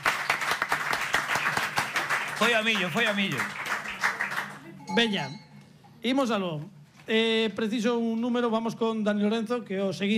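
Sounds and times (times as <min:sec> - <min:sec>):
audience applause for a contestant on a quiz show: 0:00.0 - 0:04.6
speech: 0:02.4 - 0:03.6, 0:04.9 - 0:05.4, 0:06.0 - 0:10.1.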